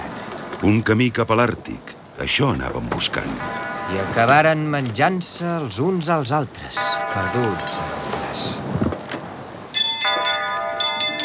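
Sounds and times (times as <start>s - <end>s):
steady noise: 0.0s - 11.2s
speech: 0.6s - 8.6s
bells ringing: 3.4s - 4.7s, 6.7s - 8.6s, 9.7s - 11.2s.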